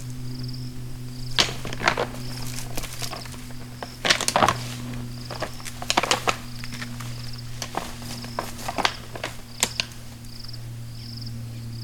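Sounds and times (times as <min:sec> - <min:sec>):
impala fighting with clacking horns: 0:00.0 - 0:10.7
low hum: 0:00.0 - 0:11.8.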